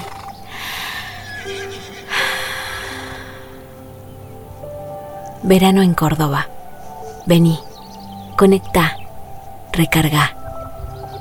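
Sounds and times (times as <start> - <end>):
horse neighing: 0.6 - 3.6
speech: 5.4 - 6.6, 7.2 - 7.7, 8.4 - 8.9, 9.8 - 10.4.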